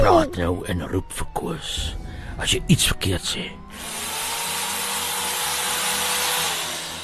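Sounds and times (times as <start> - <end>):
speech: 0.2 - 4.0
power drill whirring: 3.7 - 7.0.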